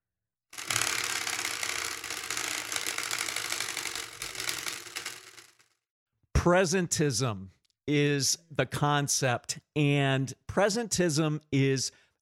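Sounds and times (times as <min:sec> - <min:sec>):
spinning wheel clicking as it turns: 0:00.6 - 0:05.7
speech: 0:06.4 - 0:12.0.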